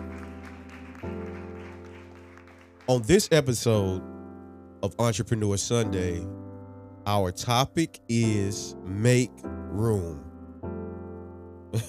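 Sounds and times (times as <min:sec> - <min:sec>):
crowd applause and clapping: 0:00.0 - 0:03.3
sustained keyboard or organ chords: 0:00.0 - 0:11.8
speech: 0:02.9 - 0:04.1, 0:04.8 - 0:06.5, 0:07.1 - 0:10.3.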